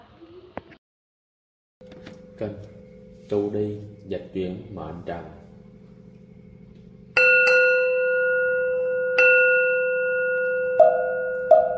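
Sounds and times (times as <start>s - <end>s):
bell struck in a Buddhist meditation setting: 1.8s - 4.6s, 6.5s - 11.7s
faint low hum: 1.8s - 7.2s
speech: 2.4s - 5.4s.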